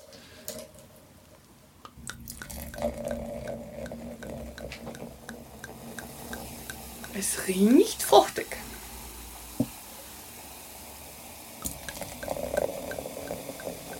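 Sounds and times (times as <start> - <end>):
tea pouring into a glass: 2.0 - 7.3, 11.6 - 13.9
speech: 7.2 - 8.7.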